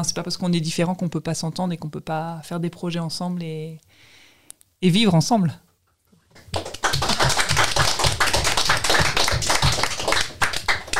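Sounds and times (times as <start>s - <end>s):
speech: 0.0s - 4.2s, 4.8s - 5.6s
audience applause: 6.4s - 10.9s.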